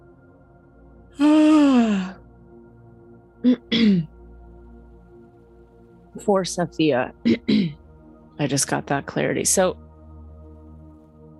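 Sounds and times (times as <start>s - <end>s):
person yawning: 1.2s - 2.2s, 3.4s - 4.1s
speech: 6.2s - 7.8s, 8.4s - 9.8s.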